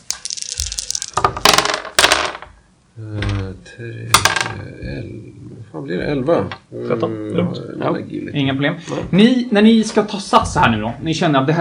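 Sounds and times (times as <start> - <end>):
pair of dice rattling across a hard surface: 0.0 - 2.5, 4.2 - 4.6
speech: 3.0 - 3.2, 3.8 - 11.5.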